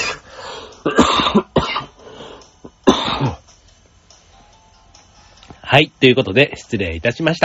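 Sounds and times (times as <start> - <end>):
harsh rasping coughs: 0.8 - 2.0, 2.8 - 3.4
speech: 1.3 - 1.5, 5.7 - 7.4.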